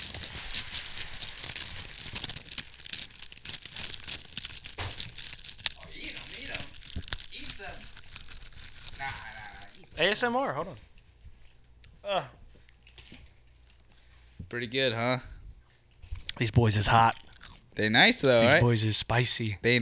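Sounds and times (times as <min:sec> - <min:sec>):
spicy hot potato chips crunching while eaten by the handful: 0:00.0 - 0:10.3, 0:16.2 - 0:18.6
speech: 0:10.0 - 0:10.9, 0:12.1 - 0:12.4, 0:14.5 - 0:15.3, 0:16.4 - 0:17.2, 0:17.8 - 0:19.7.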